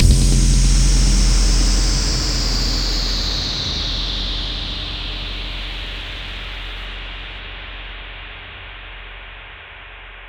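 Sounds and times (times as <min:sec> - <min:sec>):
strong high fluctuating impact with echo: 0:00.0 - 0:07.4.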